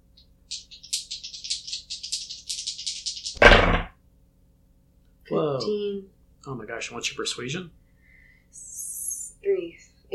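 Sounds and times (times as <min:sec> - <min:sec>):
two dice rattling inside a shaker or cupped hands: 0:00.5 - 0:03.4
speech: 0:05.3 - 0:07.8.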